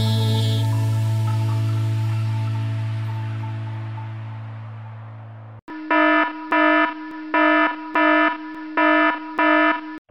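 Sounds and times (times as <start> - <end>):
low musical drone: 0.2 - 5.6
warning alarm buzzing in electronic pulses: 5.7 - 10.0.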